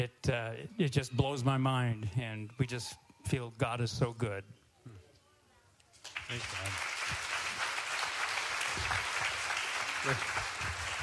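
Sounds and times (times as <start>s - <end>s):
speech: 0.0s - 5.0s, 6.3s - 7.4s, 10.0s - 10.8s
crowd clapping: 6.0s - 11.0s.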